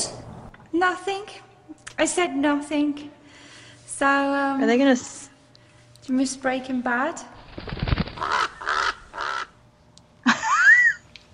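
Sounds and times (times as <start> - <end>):
speech: 0.7 - 3.2, 4.0 - 5.2, 6.1 - 8.4
raven cawing and croaking: 8.1 - 9.6.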